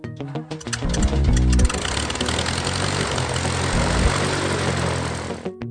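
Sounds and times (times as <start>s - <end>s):
propeller airplane engine roaring: 0.5s - 5.5s.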